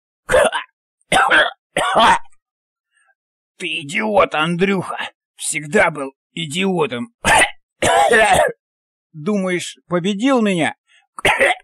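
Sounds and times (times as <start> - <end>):
narrator imitating a hoarse gurgling laugh or cough of a dying creature: 0.3 - 2.3, 7.2 - 8.6, 11.2 - 11.6
speech: 1.1 - 2.2, 3.6 - 8.6, 9.2 - 11.6.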